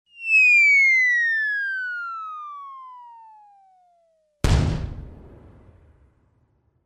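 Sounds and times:
long whistle of flight: 0.1 - 4.2.

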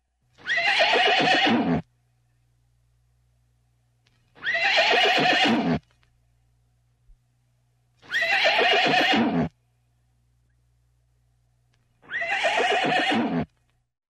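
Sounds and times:
horse neighing close-up: 0.4 - 1.8, 4.4 - 5.8, 8.1 - 9.5, 12.1 - 13.5.

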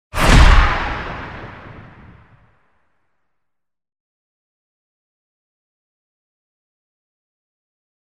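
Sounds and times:
powerful danger accent: 0.2 - 2.3.

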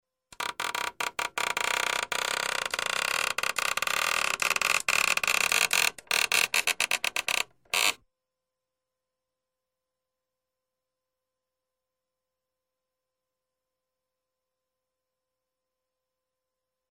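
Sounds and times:
door creaking: 0.4 - 8.0.

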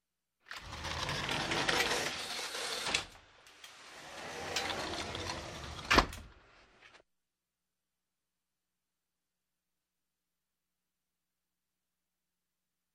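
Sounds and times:
sliding door on rollers: 0.5 - 6.8.

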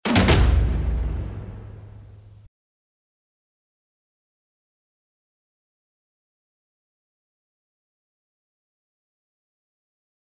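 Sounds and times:
double hit: 0.0 - 2.5.

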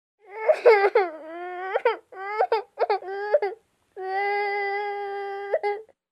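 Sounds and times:
person crying bitterly: 0.4 - 5.7.

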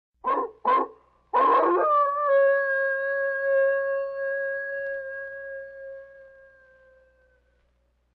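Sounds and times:
werewolf howling: 1.4 - 7.4.

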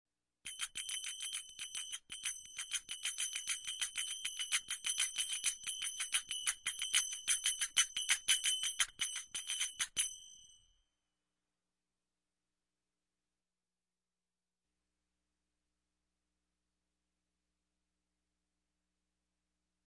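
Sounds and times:
small musical bell: 0.5 - 11.0.

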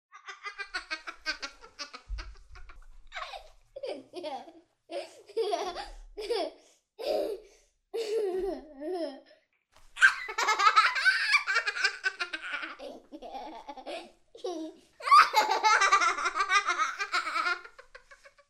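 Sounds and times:
child laughing infectiously: 0.2 - 7.4, 8.0 - 9.2, 10.0 - 18.4.

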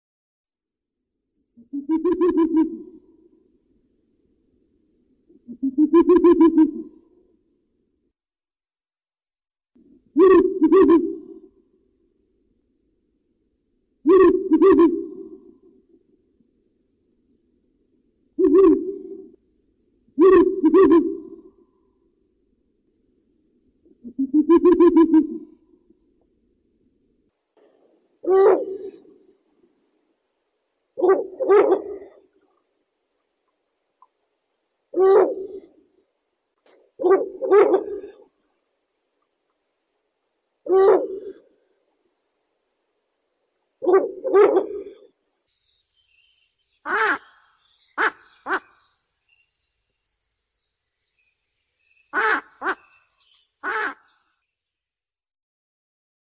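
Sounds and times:
Ural owl calling: 1.6 - 3.0, 5.5 - 7.0, 10.2 - 11.5, 14.1 - 15.5, 18.4 - 19.4, 20.2 - 21.5, 24.1 - 25.6, 28.2 - 29.2, 31.0 - 32.3, 34.9 - 35.8, 37.0 - 38.3, 40.7 - 41.6, 43.8 - 45.1, 46.8 - 49.0, 52.0 - 54.3.

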